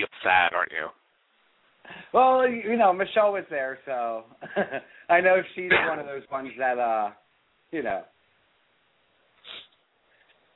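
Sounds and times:
speech: 0:00.0 - 0:01.0, 0:01.8 - 0:08.1
quiet hiss: 0:00.0 - 0:10.5
single quick breathy sniffle: 0:09.4 - 0:09.8.

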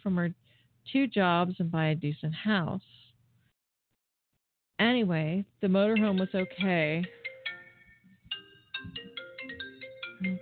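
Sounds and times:
speech: 0:00.0 - 0:03.0, 0:04.8 - 0:07.2
mobile phone ringtone with bright electronic melody: 0:06.0 - 0:10.4.

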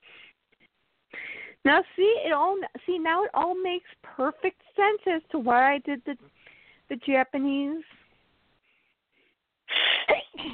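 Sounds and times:
speech: 0:01.6 - 0:08.0
sneeze: 0:09.7 - 0:10.5.

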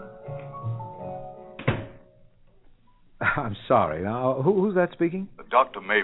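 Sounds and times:
door shutting with a solid thunk: 0:01.6 - 0:02.1
speech: 0:03.4 - 0:06.0.

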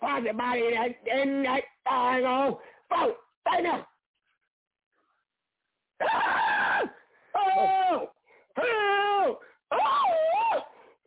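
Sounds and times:
speech: 0:00.2 - 0:03.9, 0:07.5 - 0:09.4
person yelling and screaming: 0:06.0 - 0:10.7.

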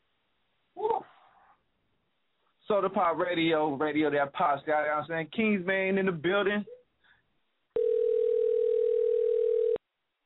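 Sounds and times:
speech: 0:02.7 - 0:06.7
telephone ringback tone on outgoing call: 0:07.8 - 0:09.8.

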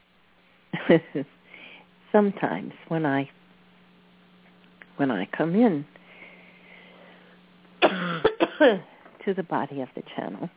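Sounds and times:
speech: 0:00.9 - 0:01.4, 0:02.1 - 0:03.4, 0:05.0 - 0:06.0, 0:08.6 - 0:10.5
woman clearing a tickle from her throat: 0:07.8 - 0:08.9.

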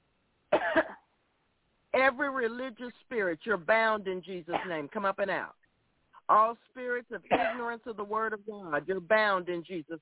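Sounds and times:
person coughing on command during a prayer session: 0:00.6 - 0:01.0, 0:04.5 - 0:04.8, 0:07.3 - 0:07.7
speech: 0:02.0 - 0:05.6, 0:06.3 - 0:10.0.

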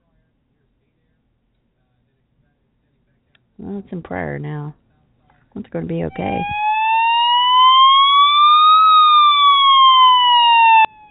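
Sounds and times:
speech: 0:03.6 - 0:04.8, 0:05.6 - 0:06.6
loud emergency vehicle siren wailing: 0:06.1 - 0:11.0.

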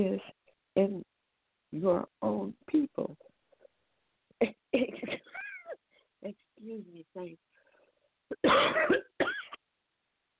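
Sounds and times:
speech: 0:00.0 - 0:01.1, 0:01.7 - 0:03.2, 0:04.4 - 0:05.3, 0:06.2 - 0:07.5, 0:08.3 - 0:09.4
person coughing with a raspy hack: 0:08.3 - 0:09.6.

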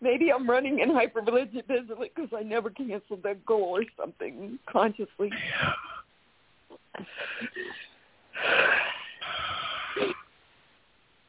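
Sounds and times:
speech: 0:00.0 - 0:05.9, 0:07.0 - 0:10.2
heavy raspy wheezy breathing: 0:06.8 - 0:10.3.

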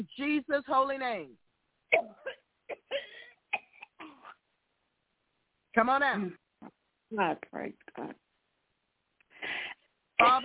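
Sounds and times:
speech: 0:00.0 - 0:03.0, 0:05.8 - 0:08.2, 0:10.2 - 0:10.4
person coughing harshly: 0:02.0 - 0:04.4.

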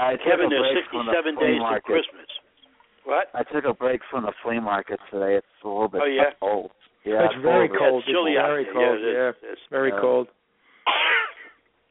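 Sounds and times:
speech: 0:00.0 - 0:02.4, 0:03.1 - 0:11.0
person sneezing: 0:10.8 - 0:11.6.

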